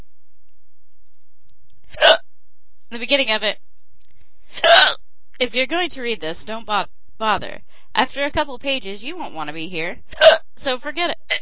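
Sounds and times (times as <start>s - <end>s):
hiccup: 2.0s - 2.2s, 4.6s - 5.0s, 10.2s - 10.5s
speech: 2.9s - 3.6s, 4.5s - 11.4s.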